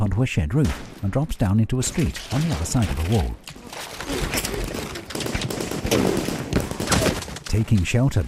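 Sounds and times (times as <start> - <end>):
speech: 0.0 - 4.2, 7.5 - 8.2
gunfire from a sandbag barricade at the far end of a street: 2.1 - 7.4.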